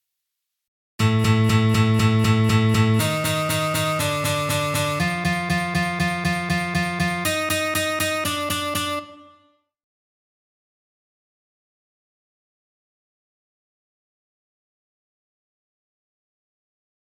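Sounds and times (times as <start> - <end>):
octave playing exercise: 1.0 - 9.5.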